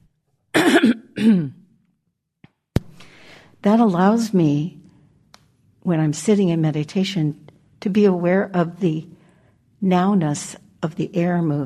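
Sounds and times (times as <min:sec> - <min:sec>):
person clearing throat during a meditation session: 0:00.6 - 0:01.7
speech: 0:00.8 - 0:01.6, 0:03.6 - 0:04.8, 0:05.8 - 0:09.2, 0:09.8 - 0:11.6.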